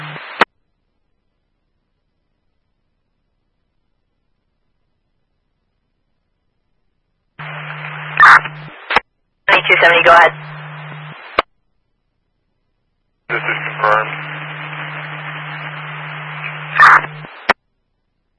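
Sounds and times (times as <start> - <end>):
harsh band-limited radio static: 0.0 - 0.5, 7.4 - 11.5, 13.3 - 17.6
low hum: 0.0 - 18.3
speech: 9.8 - 10.5.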